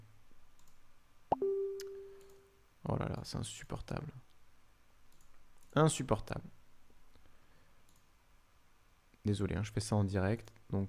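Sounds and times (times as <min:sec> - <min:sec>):
social media app notification chime: 0:01.3 - 0:02.2
speech: 0:02.9 - 0:04.3, 0:05.8 - 0:06.6, 0:09.2 - 0:10.8.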